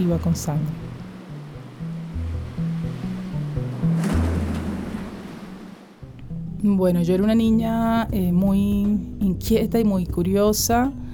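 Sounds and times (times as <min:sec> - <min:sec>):
speech: 0:00.0 - 0:00.8, 0:06.6 - 0:11.0
ocean surf rolling: 0:00.0 - 0:06.1.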